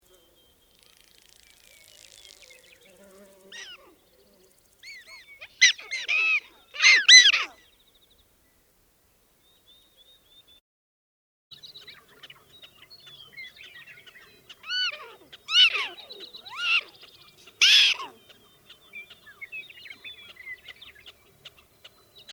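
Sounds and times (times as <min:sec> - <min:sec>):
black-tailed prairie dog social calls: 0:00.1 - 0:08.0, 0:11.6 - 0:22.3.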